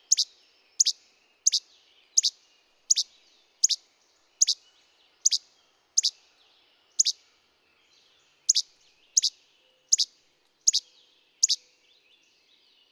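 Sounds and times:
bird chirping: 0:00.0 - 0:12.9.

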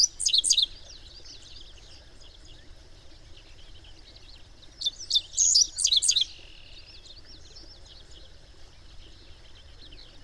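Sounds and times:
bird twittering in quick chirps: 0:04.8 - 0:06.8.

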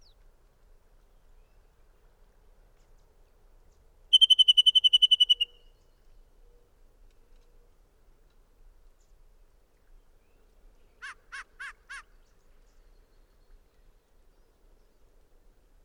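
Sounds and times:
bird trilling: 0:04.1 - 0:05.6.

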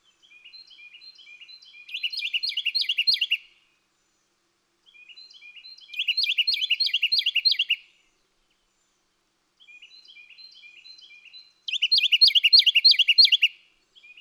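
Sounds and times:
bird song trill: 0:00.0 - 0:03.4, 0:04.8 - 0:07.9, 0:09.6 - 0:14.1.

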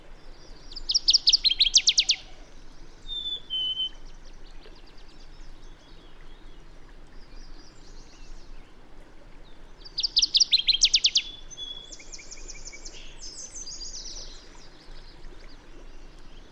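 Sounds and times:
steady background hiss: 0:00.0 - 0:16.5
bird song with fast trill of high notes: 0:00.4 - 0:06.6, 0:09.8 - 0:16.5.

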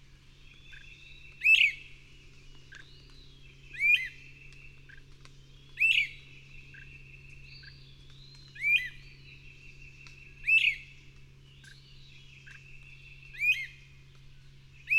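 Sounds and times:
bird song of high whistled phrases: 0:00.4 - 0:01.9, 0:02.7 - 0:05.0, 0:05.7 - 0:10.9, 0:11.6 - 0:13.8, 0:14.8 - 0:14.9.

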